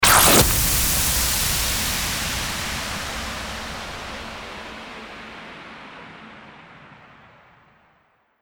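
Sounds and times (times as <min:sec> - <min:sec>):
starter whoosh: 0:00.0 - 0:04.2.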